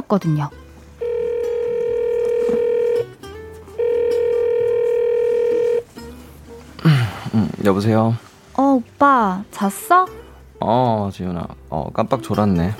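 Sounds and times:
speech: 0.1 - 0.6, 7.6 - 12.7
phone ringback tone of a call placed from a train: 1.0 - 3.2, 3.8 - 5.9.

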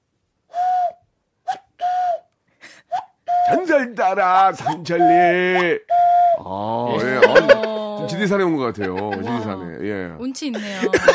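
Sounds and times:
person imitating a cuckoo call with breathy hooting whistles: 2.9 - 3.7, 4.3 - 8.1
speech: 3.5 - 11.1
laughter: 6.9 - 9.8, 10.5 - 11.1.

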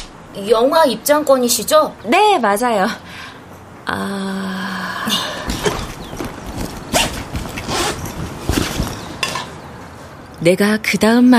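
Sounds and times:
speech: 0.4 - 3.1, 3.9 - 5.3, 10.4 - 11.3
light rustling and handling noises: 5.4 - 10.2
backpack zipper being pulled open: 5.7 - 9.1.

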